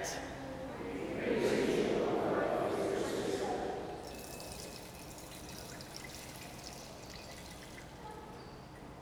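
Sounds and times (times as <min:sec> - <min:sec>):
faint murmur: 0:00.0 - 0:04.0
water pouring into a baptismal font: 0:04.0 - 0:08.4.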